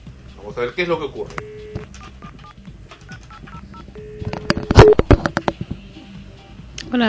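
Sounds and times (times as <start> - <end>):
speech: 0.4 - 1.7
telephone keypad dialing tones: 1.4 - 5.0.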